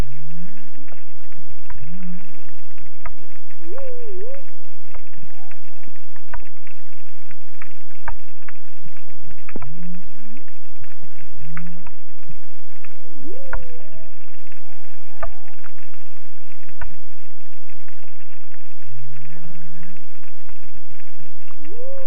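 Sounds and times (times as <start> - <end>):
popping and crackling: 0.0 - 22.0
humpback whale song: 3.5 - 5.9, 12.8 - 16.0, 21.5 - 22.0.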